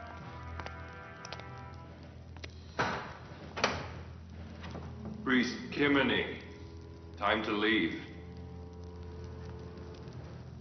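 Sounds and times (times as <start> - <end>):
heavy door creaking open: 2.7 - 5.2
speech: 5.3 - 6.4, 7.2 - 8.1.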